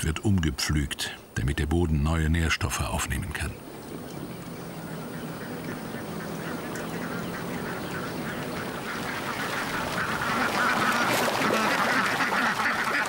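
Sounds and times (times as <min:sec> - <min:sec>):
speech: 0:00.0 - 0:03.7
large flock of ducks quacking at a harvested rice field: 0:04.6 - 0:13.0.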